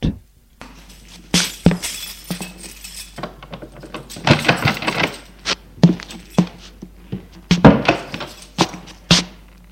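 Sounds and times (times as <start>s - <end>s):
keys jingling: 0.6s - 6.8s, 7.4s - 9.1s
door being unlocked and opened: 1.4s - 5.4s, 7.7s - 8.6s.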